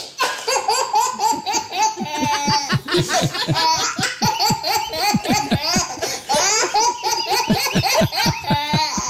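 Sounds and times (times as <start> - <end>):
10-month-old baby boy laughing heartily with squealing giggles: 0.0 - 9.0.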